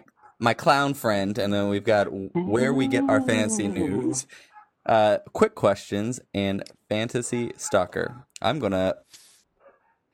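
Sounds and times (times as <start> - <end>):
speech: 0.4 - 9.2
dog barking: 7.6 - 8.2, 9.6 - 10.0.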